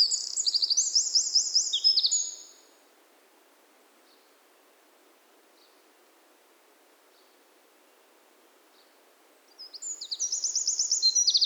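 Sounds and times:
Eurasian wren song, Troglodytes troglodytes: 0.0s - 2.6s, 9.6s - 11.4s.

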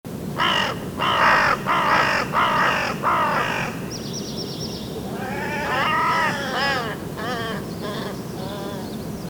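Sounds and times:
carrion crow (Corvus corone) harsh cawing calls: 0.4s - 3.9s, 5.1s - 8.9s.

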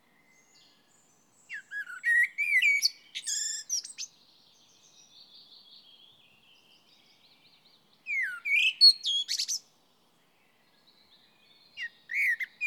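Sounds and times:
common blackbird Turdus merula singing warbled phrases with squeaky twitters: 0.2s - 9.7s, 10.8s - 12.6s.

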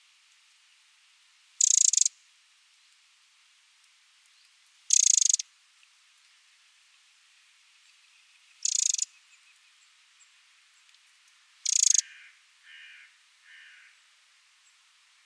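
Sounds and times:
Eurasian wren Troglodytes troglodytes giving harsh ticking rattles: 1.6s - 2.1s, 4.3s - 5.4s, 8.6s - 9.1s, 10.9s - 13.0s.

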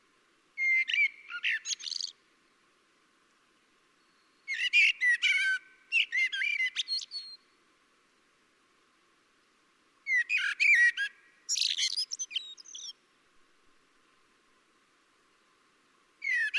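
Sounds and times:
common blackbird singing fluty notes ending in twittery chirps: 0.6s - 2.2s, 4.0s - 7.6s, 10.0s - 13.0s, 16.2s - 16.5s.

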